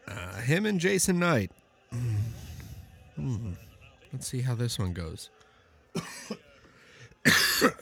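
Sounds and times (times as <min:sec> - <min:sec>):
speech: 0:00.4 - 0:02.2, 0:03.2 - 0:05.4, 0:06.0 - 0:06.4
hoarse harsh coughs: 0:06.0 - 0:06.5, 0:07.2 - 0:07.8.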